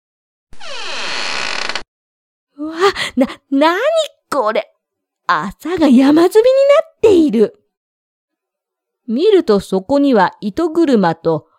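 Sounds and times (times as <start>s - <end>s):
room door creaking open: 0.5s - 1.9s
speech: 2.9s - 4.7s, 5.3s - 7.6s, 9.1s - 11.5s.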